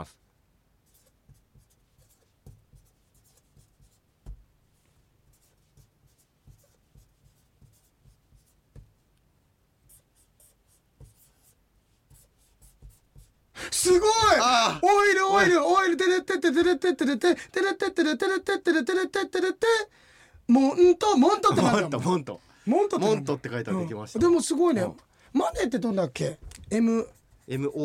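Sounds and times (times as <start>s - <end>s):
speech: 0.0s - 0.2s, 13.8s - 27.8s
pen or pencil scratching across paper writing letters by hand: 0.8s - 4.4s, 5.2s - 9.0s, 9.8s - 13.4s.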